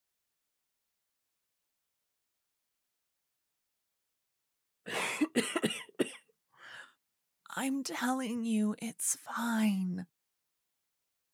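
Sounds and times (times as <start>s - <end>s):
speech: 4.8s - 5.7s, 7.6s - 10.2s
woman with a sore throat coughing hard: 4.9s - 6.2s.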